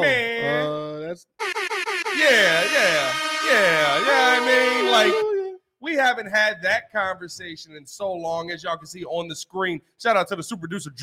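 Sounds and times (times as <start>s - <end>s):
voice mimicking a DJ air horn: 1.4s - 5.6s
speech: 2.2s - 5.2s, 6.0s - 11.0s.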